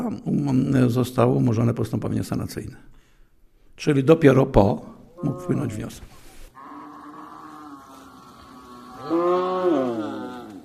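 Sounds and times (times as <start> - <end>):
speech: 0.1 - 3.0, 3.8 - 6.1
faint hum of the barn: 5.0 - 10.6
cow mooing in a cowshed: 5.2 - 5.9, 6.6 - 10.6.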